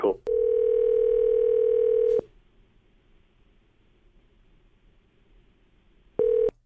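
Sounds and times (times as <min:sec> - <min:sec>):
telephone line tone heard through the receiver: 0:00.3 - 0:02.2, 0:06.2 - 0:06.5.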